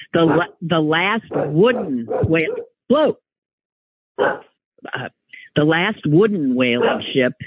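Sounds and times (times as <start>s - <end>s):
speech: 0.1s - 3.2s, 4.2s - 7.4s
dog barking and yowling: 0.2s - 0.6s, 1.3s - 2.7s, 4.2s - 4.5s, 6.8s - 7.1s.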